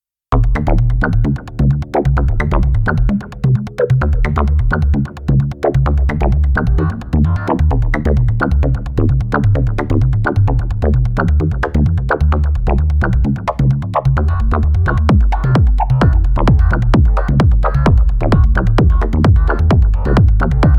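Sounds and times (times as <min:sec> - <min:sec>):
drum machine with EQ and compression: 0:00.3 - 0:20.7.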